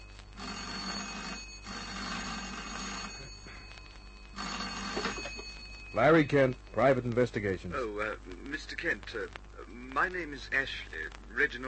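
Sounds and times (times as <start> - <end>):
old telephone bell ringing: 0.0 - 6.5
speech: 6.0 - 9.4, 10.0 - 11.6.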